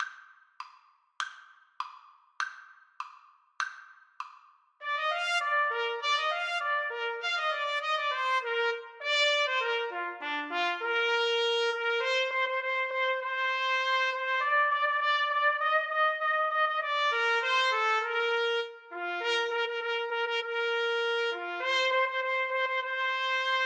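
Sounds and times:
trumpet duet: 4.8s - 23.6s.

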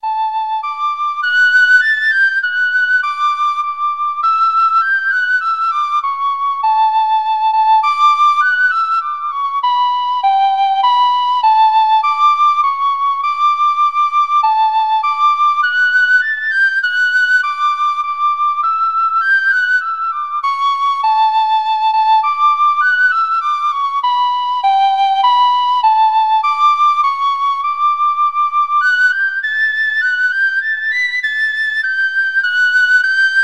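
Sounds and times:
penny whistle folk melody: 0.0s - 33.4s.

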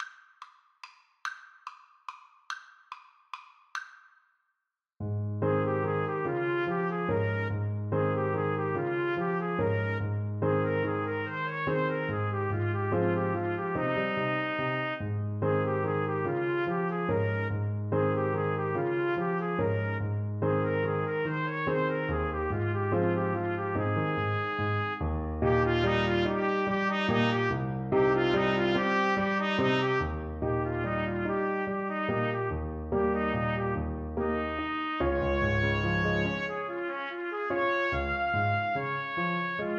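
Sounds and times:
trumpet duet: 5.5s - 39.7s.

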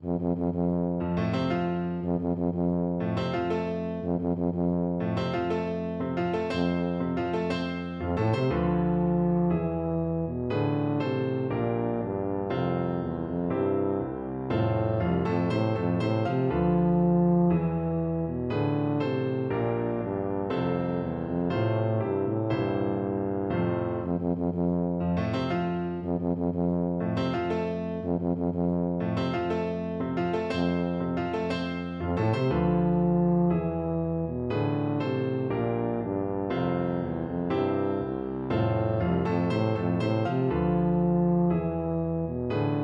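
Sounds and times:
tuba playing a wedding march: 0.0s - 42.8s.

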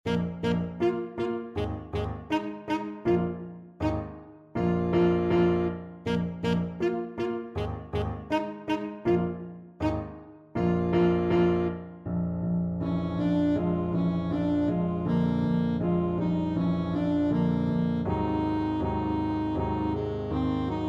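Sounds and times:
thumping blues alto saxophone: 0.0s - 11.9s, 12.8s - 20.8s.

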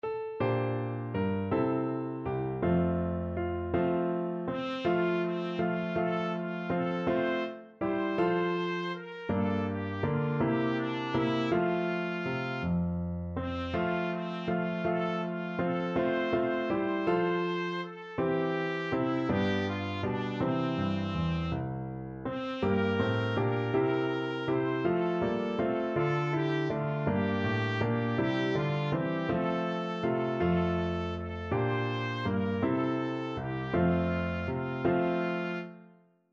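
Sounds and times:
melody on trumpet: 0.4s - 35.9s.

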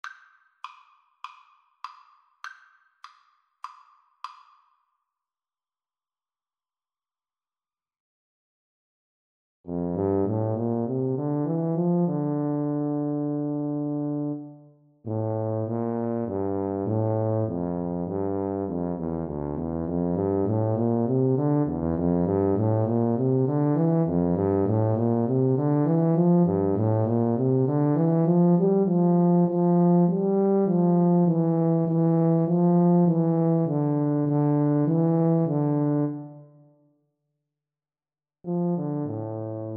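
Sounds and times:
tuba duet: 9.7s - 36.6s, 38.5s - 39.7s.

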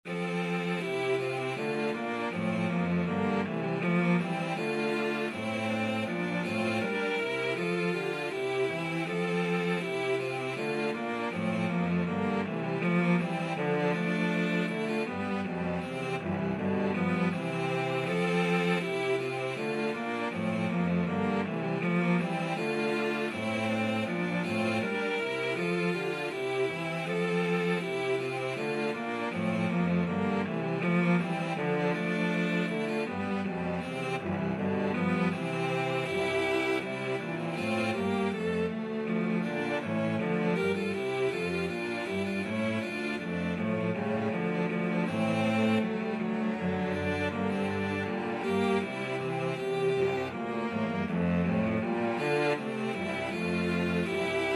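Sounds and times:
cello trio playing a hornpipe: 0.0s - 54.5s.

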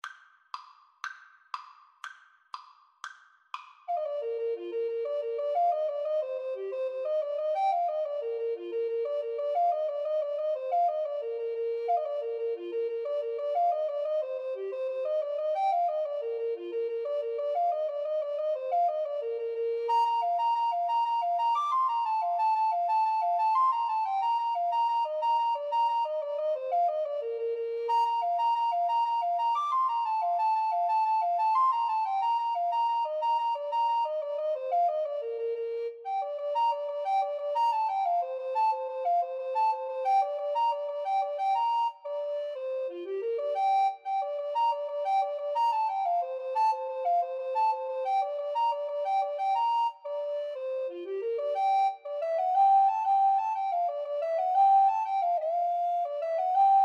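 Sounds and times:
alto recorder duet playing an Irish jig medley: 3.6s - 56.8s.

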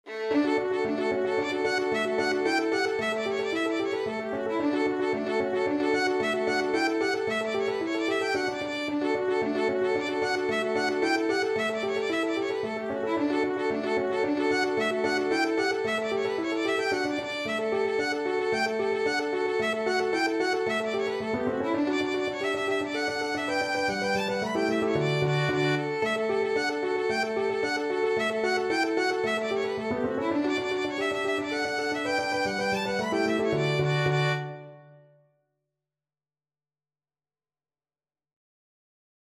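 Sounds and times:
violin playing a hornpipe: 0.0s - 35.1s.

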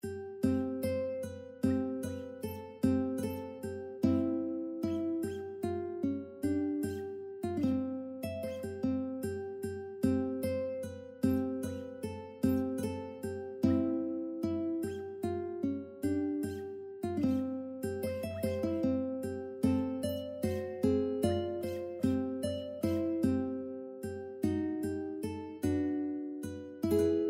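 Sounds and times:
ukulele: 0.0s - 27.2s.

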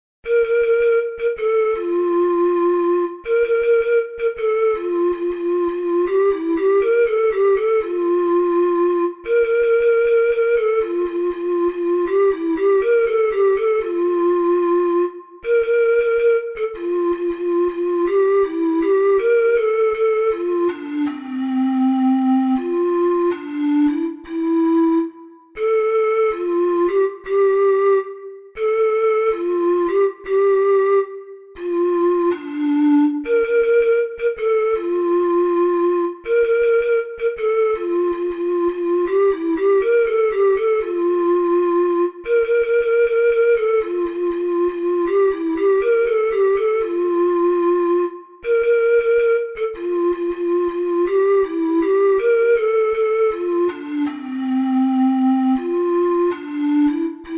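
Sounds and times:
four-hole ocarina melody: 0.2s - 57.3s.

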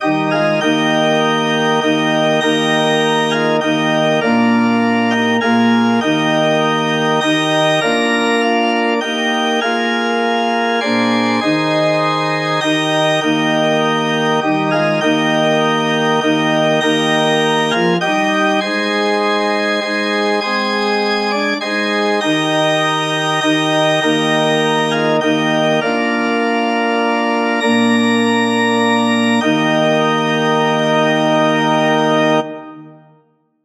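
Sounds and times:
organ playing a hymn: 0.0s - 33.2s.

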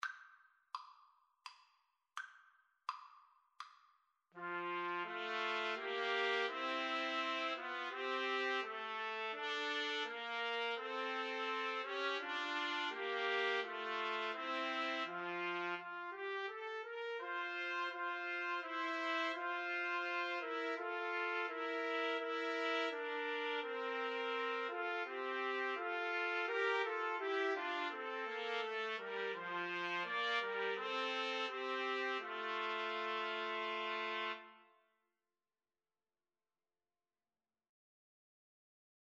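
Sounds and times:
trumpet trio playing: 4.4s - 34.6s.

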